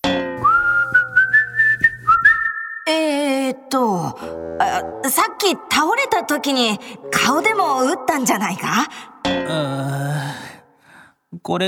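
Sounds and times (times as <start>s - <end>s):
person whistling a casual meandering tune: 0.4s - 2.9s
speech: 3.7s - 10.3s, 11.3s - 11.6s.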